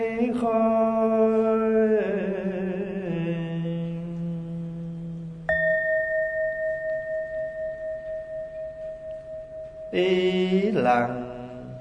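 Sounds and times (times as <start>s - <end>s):
low sustained tone: 0.0s - 11.7s
speech: 0.2s - 0.8s, 10.0s - 11.2s
bell ringing: 5.5s - 11.7s.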